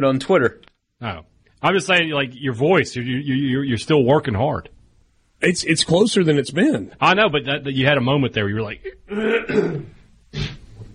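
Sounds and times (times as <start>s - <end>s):
speech: 0.0s - 4.8s, 5.4s - 10.6s
throat clearing: 9.1s - 10.7s.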